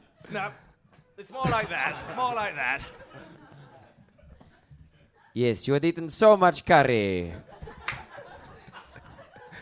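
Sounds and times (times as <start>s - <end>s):
speech: 0.3s - 0.6s, 1.2s - 3.4s, 5.4s - 8.0s
sharp loud slap from a passing stranger: 7.9s - 8.1s.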